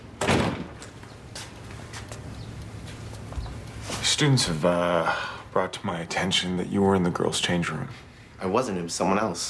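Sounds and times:
door pushed shut with a solid thud: 0.2s - 0.9s
speech: 4.2s - 9.4s.

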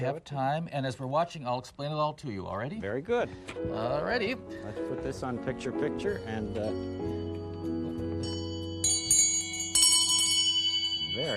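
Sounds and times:
speech: 0.0s - 7.3s, 11.2s - 11.3s
bee bell struck with bright metallic clangs: 5.9s - 11.3s
steady sustained bell ringing hum: 6.2s - 11.3s.

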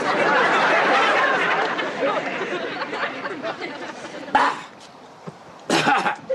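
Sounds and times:
laughter: 0.0s - 4.8s, 5.7s - 6.3s
smoker's rough raspy cough: 5.7s - 6.3s.

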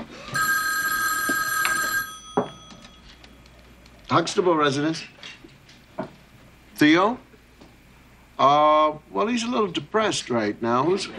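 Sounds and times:
telephone bell ringing with a bright electronic trill: 0.2s - 3.3s
speech: 4.1s - 5.2s, 6.8s - 7.3s, 8.4s - 11.1s.

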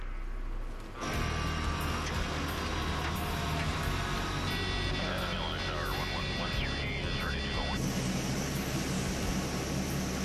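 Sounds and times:
Electra propeller airplane engines roaring as it heads out north: 0.8s - 10.2s.

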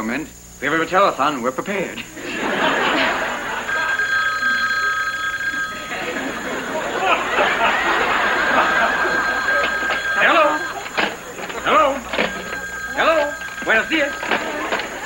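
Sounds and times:
speech: 0.0s - 2.8s
laughter: 2.0s - 15.0s
many telephones ringing at once: 2.2s - 15.0s.

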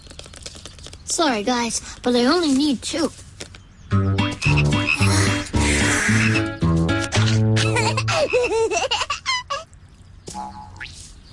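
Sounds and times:
speech: 1.2s - 3.2s
frogs croaking: 4.3s - 6.5s, 9.6s - 11.1s
laughter-like sounds: 7.6s - 9.7s.

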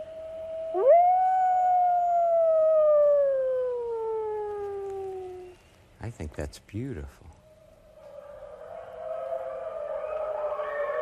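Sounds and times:
wolf howling: 0.0s - 5.6s, 8.0s - 10.9s
speech: 6.2s - 7.4s.

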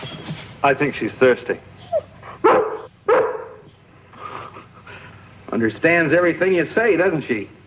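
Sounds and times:
speech: 0.6s - 2.6s, 5.6s - 7.6s
dog whining: 1.8s - 3.7s
dog barking: 2.4s - 3.7s.

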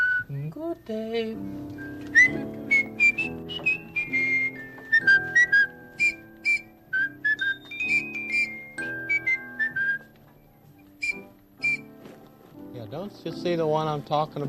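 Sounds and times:
whistle blown in tuneful toots: 0.0s - 0.4s, 1.8s - 10.1s, 10.8s - 12.0s
soft musical backing: 0.0s - 14.4s
speech: 0.5s - 2.6s, 13.1s - 14.4s.

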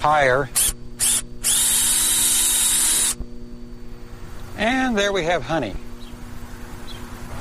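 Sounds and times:
speech: 0.0s - 0.8s, 4.6s - 5.9s
power drill boring into a beehive: 0.6s - 3.2s.

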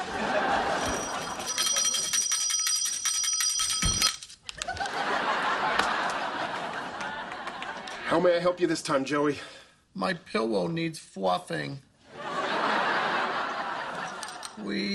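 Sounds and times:
people laughing: 0.0s - 1.8s, 4.6s - 8.2s, 12.1s - 14.9s
small bell rung by a baby in a hospital ward: 0.7s - 4.3s
speech: 8.1s - 11.9s, 14.6s - 14.9s.

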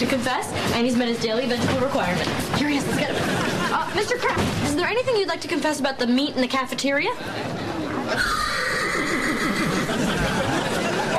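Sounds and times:
speech: 0.0s - 8.4s
laughter: 2.6s - 4.4s, 7.2s - 11.1s
man imitating a horse whinny: 8.0s - 9.9s.

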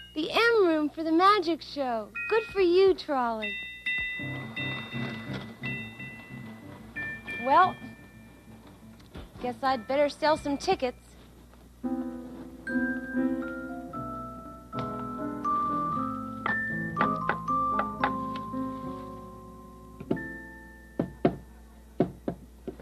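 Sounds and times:
speech: 0.2s - 4.4s, 7.4s - 7.9s, 9.4s - 11.0s
steady melodic music: 4.0s - 10.6s, 11.9s - 21.9s
sharp knocks on a door: 21.0s - 21.4s, 22.0s - 22.4s.

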